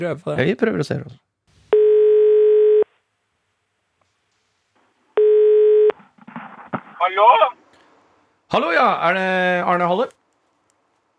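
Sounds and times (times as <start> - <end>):
speech: 0.0 - 1.2, 7.1 - 7.6, 8.5 - 10.2
electronic telephone tone while placing a call: 1.7 - 2.9, 5.2 - 6.0.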